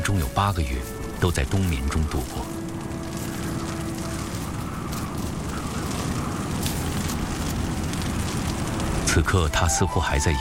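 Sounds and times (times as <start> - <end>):
hail falling in a dense patter: 0.0 - 10.3
speech: 0.1 - 2.6, 9.2 - 10.3
low rumble: 0.9 - 9.6.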